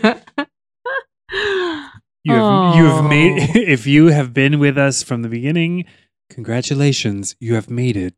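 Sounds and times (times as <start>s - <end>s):
laughter: 0.0s - 1.5s, 2.3s - 5.8s
breathy vocal sounds: 1.3s - 3.9s
long drawn-out yawns sliding downward in pitch: 1.4s - 3.5s
speech: 2.3s - 8.1s.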